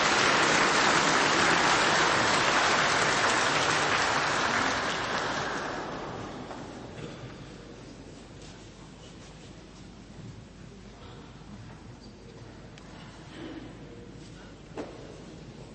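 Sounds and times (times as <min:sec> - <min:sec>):
crowd applauding: 0:00.0 - 0:06.6.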